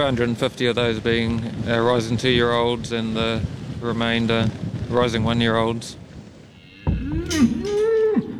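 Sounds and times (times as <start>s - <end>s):
speech: 0.0s - 6.0s, 7.1s - 7.8s
young beef bull mooing: 6.5s - 8.3s.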